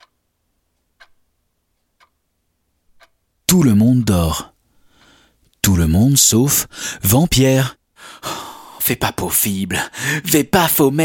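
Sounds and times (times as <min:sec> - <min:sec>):
distant pendulum clock ticking: 0:00.0 - 0:04.5
speech: 0:03.5 - 0:04.5, 0:05.8 - 0:11.0.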